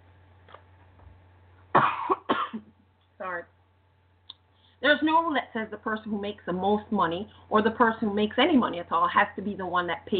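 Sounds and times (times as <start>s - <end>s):
low steady hum: 0.0s - 10.1s
person coughing harshly: 1.7s - 2.8s
speech: 5.2s - 10.1s.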